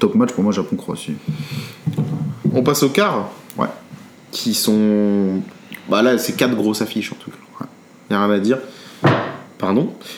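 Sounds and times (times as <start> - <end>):
speech: 0.0 - 7.4, 8.1 - 8.8, 9.6 - 10.1
chair bumping or knocking against something: 1.2 - 2.8, 9.0 - 9.5.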